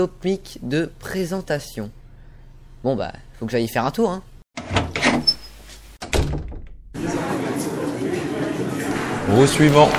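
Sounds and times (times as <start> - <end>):
speech: 0.0 - 2.0, 2.8 - 5.3, 9.3 - 9.9
door thudding and swinging open: 6.0 - 6.9
busy noise and murmuring chatter: 7.0 - 9.9.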